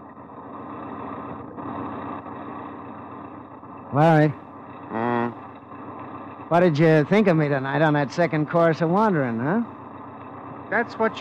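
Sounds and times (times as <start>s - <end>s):
old car engine wheezing along highway: 0.0s - 11.2s
speech: 3.9s - 4.4s, 6.5s - 9.8s, 10.7s - 11.2s.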